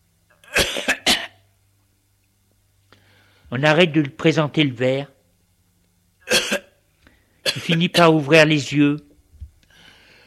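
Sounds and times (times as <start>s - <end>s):
wet coughing spitting up water: 0.4s - 1.4s, 6.3s - 6.8s, 7.4s - 8.0s
speech: 3.5s - 5.1s, 7.6s - 9.1s.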